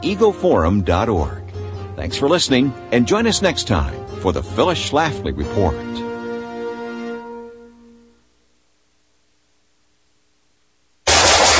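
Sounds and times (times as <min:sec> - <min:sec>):
speech: 0:00.0 - 0:01.4, 0:02.0 - 0:06.1
rifle shot: 0:11.0 - 0:11.5.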